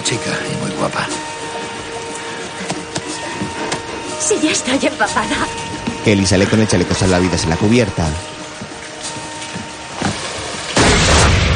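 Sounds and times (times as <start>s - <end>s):
speech: 0.1s - 1.2s, 4.2s - 8.3s
gunshot fired at a young woman on a boat deck: 10.8s - 11.5s.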